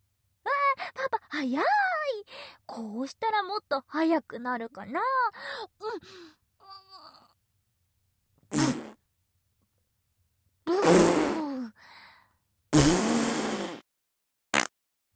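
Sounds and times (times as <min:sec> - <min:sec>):
speech: 0:01.4 - 0:06.3
fart sounds: 0:08.5 - 0:09.0, 0:10.7 - 0:11.5, 0:12.7 - 0:13.9, 0:14.5 - 0:14.8.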